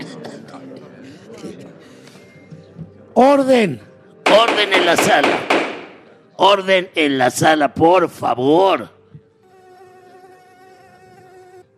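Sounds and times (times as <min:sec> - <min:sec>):
speech: 0:03.2 - 0:05.6, 0:06.4 - 0:09.0
fly buzzing: 0:09.4 - 0:11.7.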